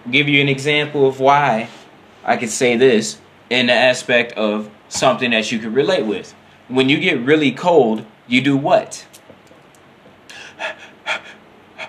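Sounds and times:
speech: 0.1 - 9.2
person gasping and panting: 10.3 - 11.8.

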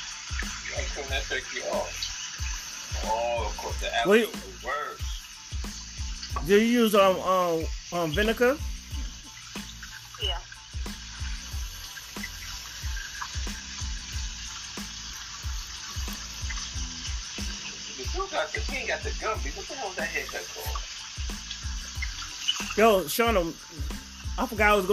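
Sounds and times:
faucet running with a hissing stream: 0.0 - 24.9
speech: 1.0 - 2.1, 2.9 - 5.1, 6.3 - 8.7, 18.5 - 20.9, 22.8 - 24.9.

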